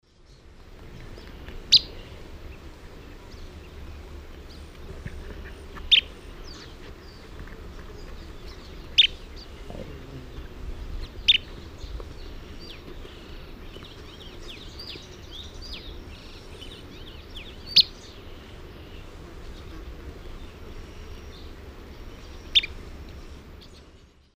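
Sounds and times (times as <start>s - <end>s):
Charadrius collaris feeding calls in South American Eastern Lowlands: 0.3s - 24.2s.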